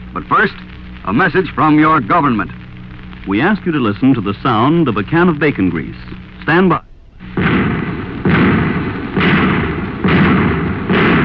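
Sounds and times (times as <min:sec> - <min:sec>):
speech: 0:00.1 - 0:02.6, 0:03.2 - 0:06.9
anti-tank shells firing with heavy booms: 0:07.2 - 0:11.2.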